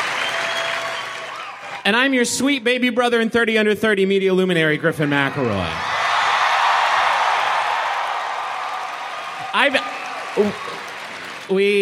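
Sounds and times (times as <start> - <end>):
live audience applause: 0.0 - 1.8, 5.5 - 11.7
speech: 1.8 - 5.9, 9.5 - 10.7, 11.5 - 11.7.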